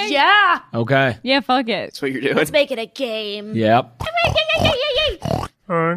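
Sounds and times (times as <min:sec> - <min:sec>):
speech: 0:00.1 - 0:05.9
person imitating a pig squealing: 0:04.0 - 0:05.6
person snorting in imitation of a pig: 0:04.0 - 0:05.6.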